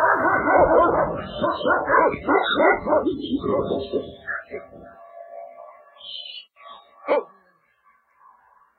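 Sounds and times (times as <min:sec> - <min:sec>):
dog barking and yipping: 0:00.0 - 0:04.8, 0:07.0 - 0:07.4.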